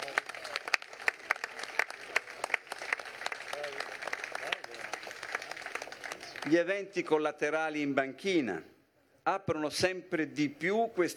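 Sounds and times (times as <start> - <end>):
audience applause: 0.0 - 6.5
speech: 6.5 - 8.7, 9.3 - 11.1.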